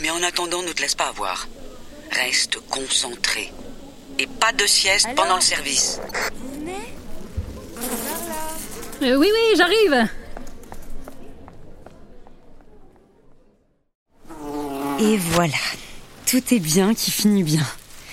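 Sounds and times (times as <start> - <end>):
speech: 0.0 - 3.6, 4.2 - 6.5, 9.0 - 10.2, 15.0 - 17.8
fly buzzing: 7.7 - 9.4, 14.2 - 15.4.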